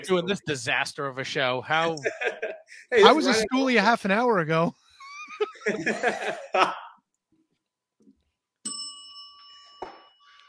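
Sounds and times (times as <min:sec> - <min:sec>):
speech: 0:00.0 - 0:06.8
people laughing: 0:01.8 - 0:03.8, 0:05.0 - 0:07.0
small bell ringing: 0:08.6 - 0:10.4.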